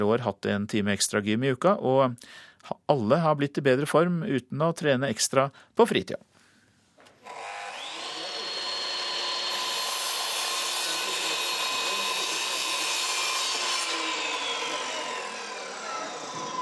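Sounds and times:
speech: 0.0 - 6.3
saw cutting through wood: 7.2 - 16.6.

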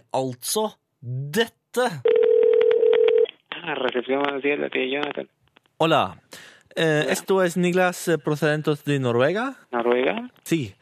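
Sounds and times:
speech: 0.1 - 2.2, 3.6 - 10.7
steady telephone dialing tone for an international call from Norway: 2.1 - 3.3.

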